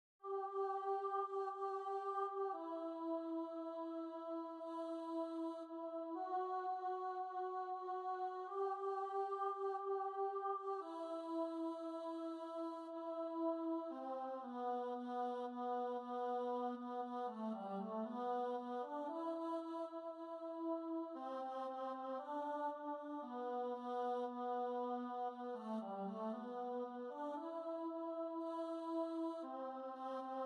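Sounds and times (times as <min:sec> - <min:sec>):
alto voice singing a mass: 0:00.2 - 0:30.4.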